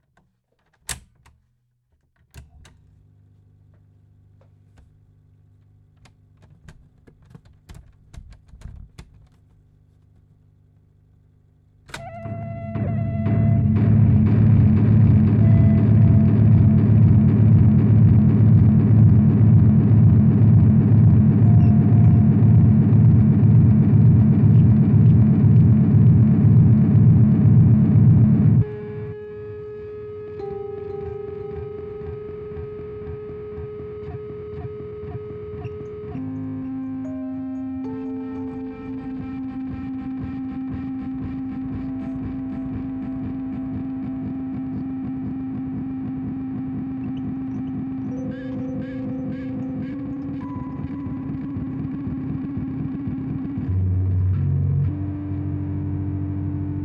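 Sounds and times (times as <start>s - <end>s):
tape recorder playback at 4.7 cm through loudspeaker, soundcheck: 11.9s - 56.8s.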